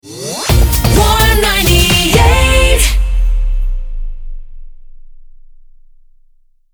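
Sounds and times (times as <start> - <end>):
rapid-fire jingle in D: 0.5 - 4.6.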